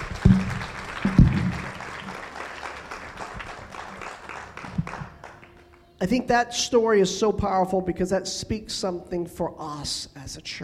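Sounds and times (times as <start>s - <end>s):
low thumps: 0.0s - 2.1s
audience applauding: 0.0s - 6.2s
speech: 6.0s - 10.6s.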